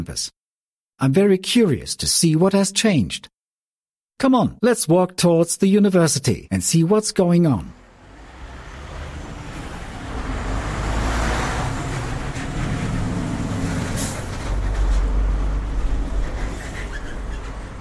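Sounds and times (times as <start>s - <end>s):
speech: 0.0s - 0.4s, 1.0s - 3.4s, 4.2s - 7.8s
road traffic with cars and heavier vehicles passing at the Dahlem Science and Research Campus: 7.7s - 17.7s.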